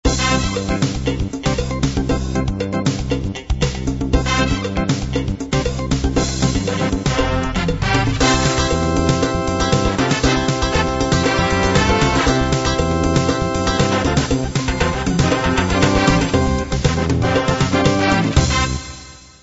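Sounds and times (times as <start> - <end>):
fusion music: 0.0 - 19.4.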